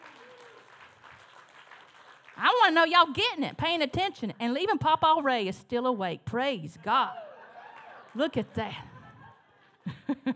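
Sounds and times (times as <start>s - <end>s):
audience clapping: 0.0s - 2.8s, 7.6s - 8.3s
speech: 2.4s - 7.2s, 8.2s - 8.9s.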